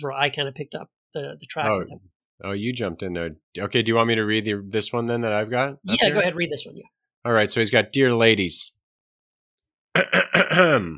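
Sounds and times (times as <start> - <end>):
speech: 0.0 - 8.8, 10.0 - 10.9
person clearing throat: 10.0 - 10.9.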